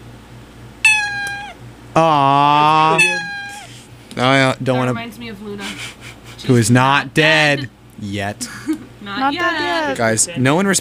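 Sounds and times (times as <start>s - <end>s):
cat meowing: 0.9s - 1.6s, 2.8s - 3.8s
speech: 2.0s - 3.2s, 4.6s - 10.7s.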